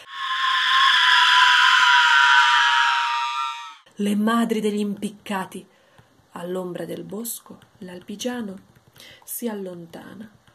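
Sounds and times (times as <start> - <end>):
women screaming a long shrill scream: 0.0 - 3.8
speech: 4.0 - 5.8, 6.4 - 10.4.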